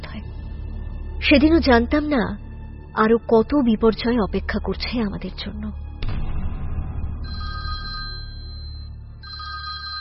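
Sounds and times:
speech: 1.2s - 2.4s, 3.0s - 5.8s
electronic telephone ringing: 7.3s - 9.9s.

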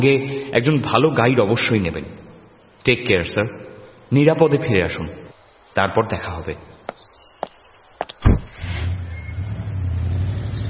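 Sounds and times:
speech: 0.0s - 2.2s, 2.8s - 5.2s, 5.8s - 6.8s
Audi car driving away: 8.4s - 10.6s.

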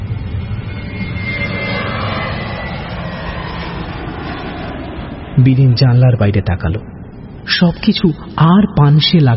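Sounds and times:
airplane engines roaring while taking off down the runway: 0.0s - 9.3s
speech: 5.4s - 9.3s.

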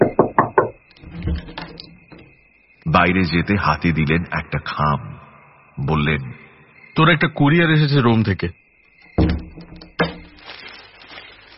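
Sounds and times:
quick sharp knocks on a room door: 0.0s - 1.6s, 9.2s - 10.2s
faint low sounds: 0.8s - 11.5s
speech: 3.0s - 5.1s, 5.8s - 6.4s, 7.0s - 8.6s.

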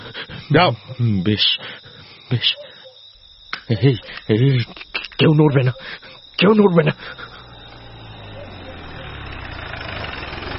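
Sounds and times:
speech: 0.5s - 2.6s, 3.7s - 7.3s
car engine pulling up outside and stopping: 6.4s - 10.5s.

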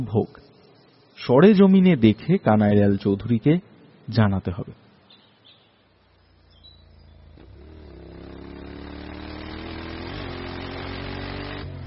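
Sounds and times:
speech: 0.0s - 0.5s, 1.2s - 4.8s
motorbike engine riding beside a river and over a concrete bridge: 6.2s - 11.8s.

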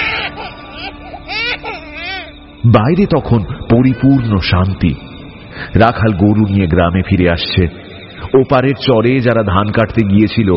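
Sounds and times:
child crying out in fear after waking: 0.0s - 2.4s
speech: 2.6s - 10.5s.

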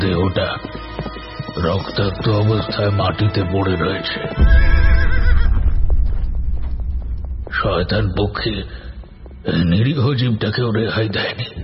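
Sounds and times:
speech: 0.2s - 0.6s, 1.6s - 4.9s, 7.6s - 8.8s, 9.4s - 11.6s
horse neighing as it is spurred into a run: 4.4s - 5.6s
dense low rumble: 4.4s - 10.4s.

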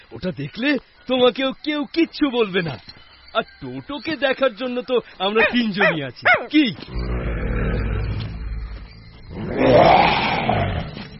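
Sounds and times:
speech: 0.1s - 7.2s
lion roaring in a jungle: 5.4s - 11.0s.

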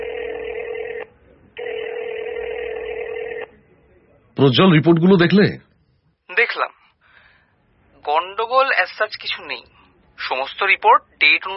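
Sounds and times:
telephone call electronic ring tone: 0.0s - 3.5s
speech: 4.4s - 5.7s, 6.4s - 6.8s, 8.1s - 11.5s.

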